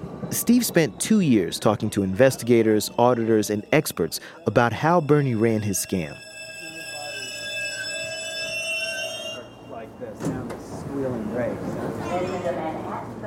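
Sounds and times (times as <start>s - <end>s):
loud steady multi-tone door alarm: 0.0s - 10.2s
murmuring crowd voices in a subway station: 0.0s - 13.2s
speech: 0.3s - 6.3s.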